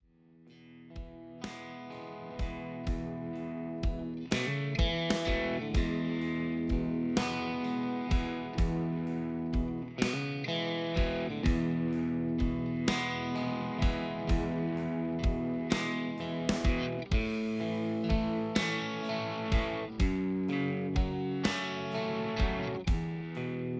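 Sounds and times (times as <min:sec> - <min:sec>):
Stratocaster electric guitar playing in E: 0:00.5 - 0:23.7.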